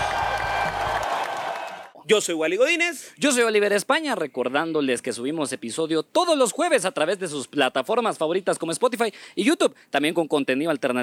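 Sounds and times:
crowd applauding: 0.0s - 2.0s
speech: 2.1s - 11.0s.

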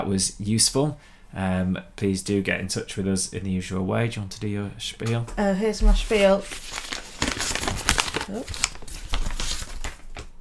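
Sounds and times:
speech: 0.1s - 7.0s, 8.3s - 8.7s
sheet of paper being rustled and handled: 6.0s - 10.3s.

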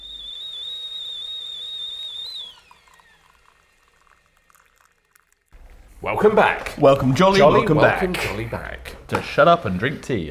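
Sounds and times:
kettle boiling and whistling: 0.0s - 7.4s
speech: 6.0s - 10.2s.

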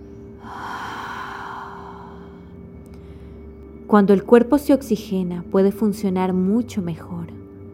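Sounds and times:
steady low hum: 0.0s - 7.7s
slow forceful exhalation: 0.4s - 2.5s
speech: 3.9s - 7.4s.

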